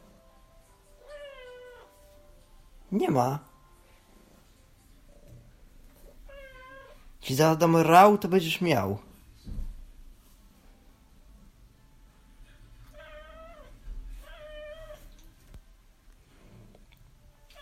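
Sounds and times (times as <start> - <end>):
cat meowing insistently to go outside: 1.0 - 1.9, 6.3 - 7.1, 12.9 - 15.2
speech: 2.9 - 3.5, 7.3 - 9.1.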